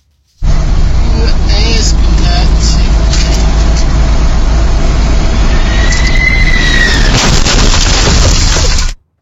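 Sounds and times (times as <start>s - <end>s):
rising jet whine: 0.4s - 7.3s
heavy truck engine and road roar: 0.4s - 9.1s
loud crunching burst of jet clipping delivery truck: 0.5s - 9.1s.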